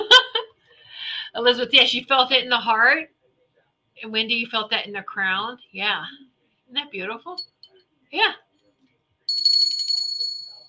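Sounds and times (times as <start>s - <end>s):
speech: 1.4s - 3.2s, 4.0s - 7.5s, 8.1s - 8.4s
small souvenir hand bell being shaken: 9.3s - 10.6s.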